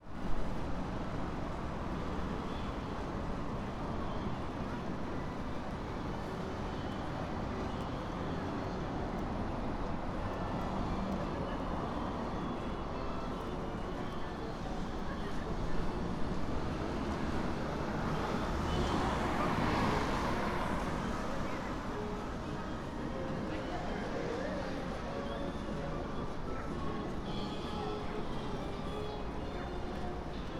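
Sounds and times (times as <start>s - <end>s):
bus at Machi-naka Square in Fukushima: 0.0s - 30.5s.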